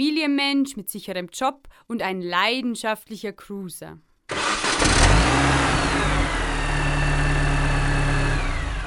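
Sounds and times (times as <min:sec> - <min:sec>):
speech: 0:00.0 - 0:04.4
petrol car engine starting and revving: 0:04.3 - 0:08.8.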